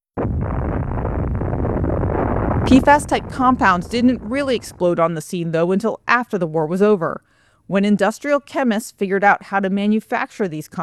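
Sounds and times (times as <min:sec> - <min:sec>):
atomic bomb explosion: 0:00.2 - 0:05.1
speech: 0:02.7 - 0:10.8.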